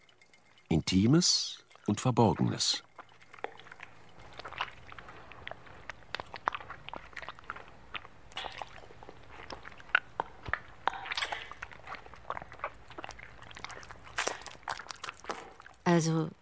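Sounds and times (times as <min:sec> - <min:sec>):
faint low hum: 0:00.0 - 0:16.3
speech: 0:00.7 - 0:02.9, 0:16.0 - 0:16.3
wet rhythmic smacking mouth sounds: 0:03.0 - 0:15.8.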